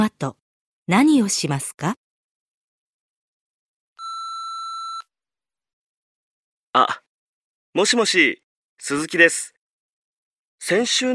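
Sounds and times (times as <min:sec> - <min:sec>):
speech: 0:00.0 - 0:02.0, 0:07.8 - 0:09.6, 0:10.6 - 0:11.1
answering machine electronic beep: 0:04.0 - 0:05.0.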